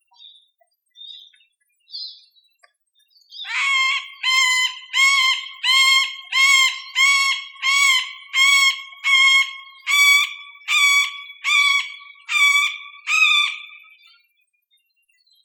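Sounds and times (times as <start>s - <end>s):
male middle spotted woodpecker territorial call: 3.4s - 14.2s.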